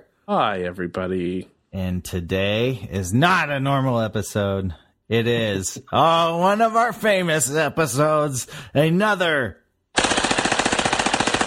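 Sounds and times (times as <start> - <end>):
speech: 0.3 - 9.6
machine gun fire sound effect: 10.0 - 11.4.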